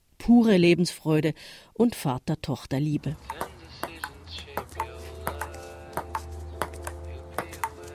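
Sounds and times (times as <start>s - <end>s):
speech: 0.3s - 3.5s
table tennis ball clicking in a rally between a father and daughter: 3.2s - 4.8s.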